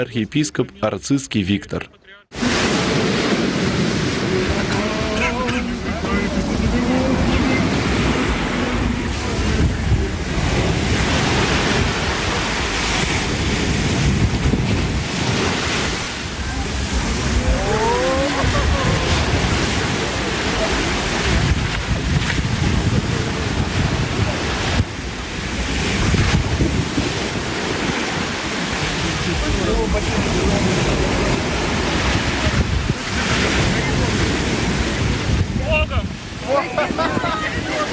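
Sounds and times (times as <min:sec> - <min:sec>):
speech: 0:00.0 - 0:02.7
Black Sea waves washing onto Langeron beach: 0:02.3 - 0:37.9
gusty wind buffeting the microphone: 0:02.4 - 0:37.9
laughter: 0:04.5 - 0:07.7, 0:17.3 - 0:21.0, 0:36.4 - 0:37.9.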